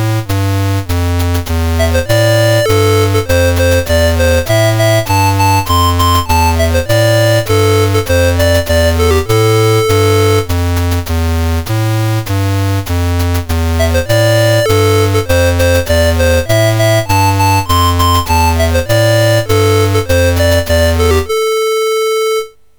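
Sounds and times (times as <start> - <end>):
chiptune music on a MOS6581R4 sound chip: 0.2 - 22.6.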